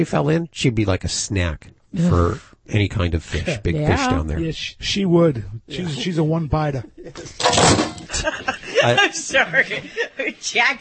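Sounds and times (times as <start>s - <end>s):
speech: 0.0s - 10.7s
laughter: 5.7s - 7.4s, 8.0s - 10.4s
cat knocking things over around a cardboard box: 7.4s - 8.1s.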